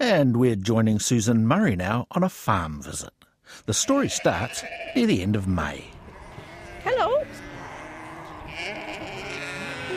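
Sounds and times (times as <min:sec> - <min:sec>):
outdoor noise: 0:00.0 - 0:09.9
speech: 0:00.1 - 0:06.0
sheep bleating: 0:03.7 - 0:05.3, 0:06.0 - 0:09.9.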